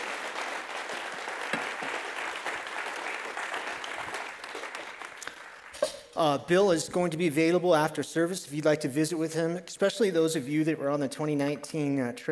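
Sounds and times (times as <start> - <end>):
audience applause: 0.0 - 5.8
speech: 6.2 - 12.3.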